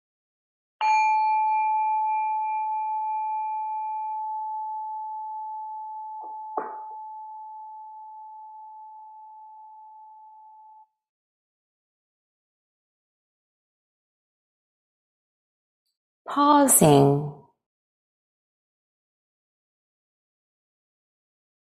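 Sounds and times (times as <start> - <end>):
meditation bell ringing: 0.8 - 10.8
speech: 16.3 - 17.3.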